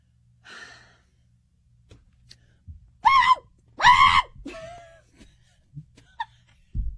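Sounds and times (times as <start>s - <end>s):
breathing: 0.4s - 1.3s, 2.3s - 2.7s
person vocally imitating a dog's screaming bark: 3.0s - 4.3s.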